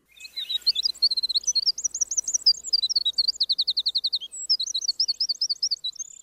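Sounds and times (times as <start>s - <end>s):
Cordillera Azul antbird Myrmoderus eowilsoni calling: 0.0s - 6.2s.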